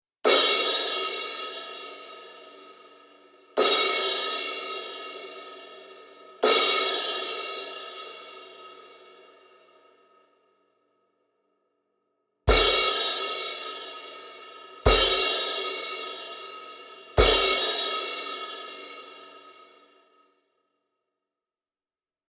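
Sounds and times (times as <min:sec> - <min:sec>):
18 HH Vanguard cymbal: 0:00.3 - 0:10.2, 0:12.5 - 0:20.1.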